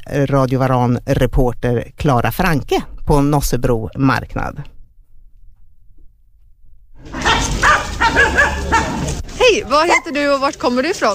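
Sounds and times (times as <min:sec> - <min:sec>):
speech: 0:00.1 - 0:04.7, 0:08.2 - 0:11.1
dog barking with short yelping barks: 0:07.0 - 0:09.2
steady murmur of outdoor noise: 0:07.0 - 0:11.1.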